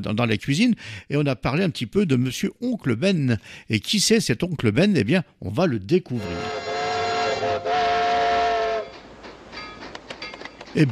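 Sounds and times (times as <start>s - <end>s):
speech: 0.0s - 6.7s, 10.8s - 10.9s
steam train whistle blowing: 6.1s - 9.0s
steam train rumbling and chugging: 6.2s - 10.9s.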